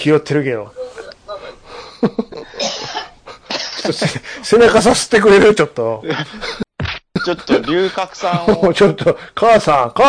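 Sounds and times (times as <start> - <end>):
speech: 0.0 - 0.8, 2.0 - 2.2, 3.8 - 6.6, 7.2 - 10.0
person in a heavy coughing fit: 2.5 - 3.7, 7.5 - 7.9.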